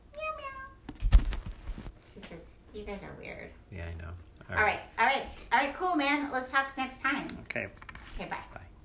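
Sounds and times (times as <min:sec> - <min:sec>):
tabby cat meowing: 0:00.1 - 0:00.8
speech: 0:02.8 - 0:08.7.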